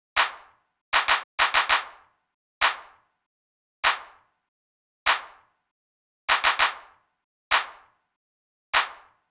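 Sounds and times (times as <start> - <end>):
hip hop hand clap: 0.2 - 0.4, 1.0 - 1.9, 6.3 - 6.8, 8.8 - 9.0.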